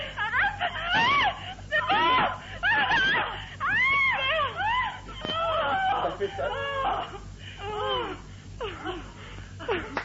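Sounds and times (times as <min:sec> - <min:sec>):
two women moaning and shrieking in faked sexual ecstasy: 0:00.0 - 0:09.2.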